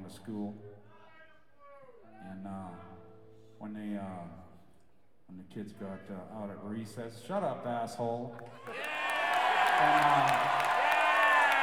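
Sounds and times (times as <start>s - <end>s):
speech: 0.1s - 0.8s, 2.2s - 2.9s, 3.6s - 4.5s, 5.3s - 9.0s, 9.8s - 10.8s
audience clapping: 8.4s - 11.6s
audience cheering and whooping: 8.6s - 11.6s.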